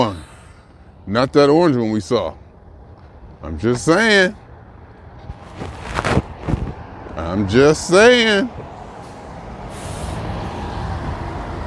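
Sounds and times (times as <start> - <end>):
large city bus engine drone on a street: 0.0 - 11.6
speech: 1.1 - 2.4, 3.4 - 4.4, 7.2 - 8.7
bus air brakes hissing: 9.0 - 10.5.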